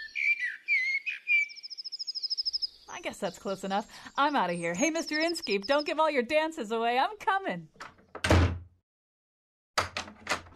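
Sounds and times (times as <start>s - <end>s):
bird whistles and chirping trill: 0.0s - 2.8s, 4.5s - 6.0s
speech: 3.0s - 7.9s.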